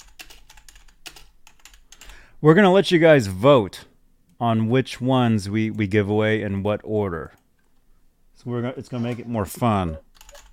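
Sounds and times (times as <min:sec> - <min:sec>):
typing on a computer keyboard: 0:00.0 - 0:02.1, 0:10.1 - 0:10.5
speech: 0:02.4 - 0:07.4, 0:08.4 - 0:10.0.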